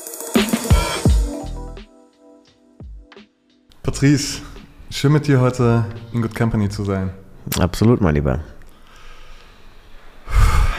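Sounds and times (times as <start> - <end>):
speech: 3.9 - 8.6
deep breathy exhale after a breathwork session: 8.8 - 10.7.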